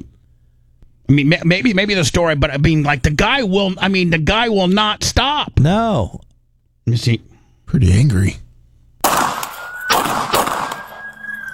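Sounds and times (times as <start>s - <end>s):
speech: 1.1s - 6.2s, 6.9s - 8.4s
gunshots in a fight: 9.0s - 11.5s
thin steady high-pitched tone: 10.7s - 11.5s.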